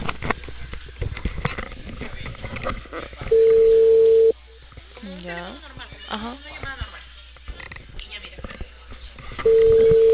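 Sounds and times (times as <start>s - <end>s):
telephone ringback tone on a call to a phone operator: 3.3s - 4.3s, 9.5s - 10.1s.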